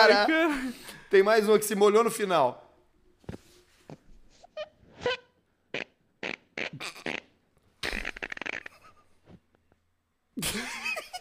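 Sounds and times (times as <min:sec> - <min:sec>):
speech: 0:00.0 - 0:02.6
squeaky whistling farts: 0:04.4 - 0:09.0.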